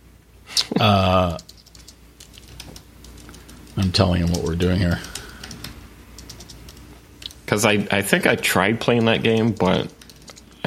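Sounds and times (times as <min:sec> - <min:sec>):
speech: 0:00.8 - 0:01.4, 0:03.8 - 0:05.1, 0:07.5 - 0:10.0
typing on a computer keyboard: 0:01.3 - 0:06.8, 0:08.9 - 0:10.6.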